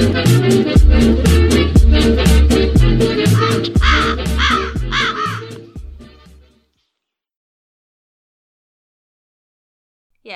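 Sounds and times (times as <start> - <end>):
deep steady rhythmic backing: 0.0 - 6.4
crow cawing: 3.2 - 5.7.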